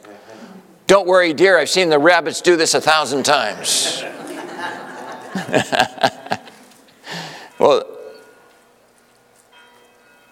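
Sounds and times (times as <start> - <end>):
soft hiss of noise: 0.0 - 10.2
speech: 0.9 - 4.2, 5.3 - 6.2
laughter: 3.0 - 6.7
single church bell ringing: 7.2 - 10.2.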